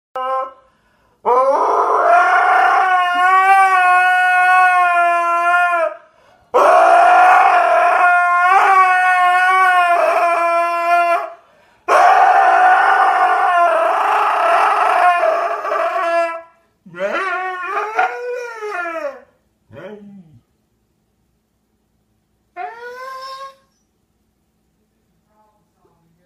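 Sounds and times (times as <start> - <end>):
husky screaming: 1.3 - 19.9, 22.5 - 23.8.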